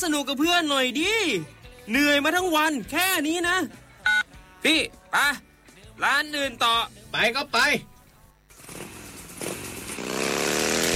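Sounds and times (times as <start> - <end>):
speech: 0.0 - 3.8, 4.6 - 7.9
car engine revving while speeding up to overtake: 8.6 - 10.9.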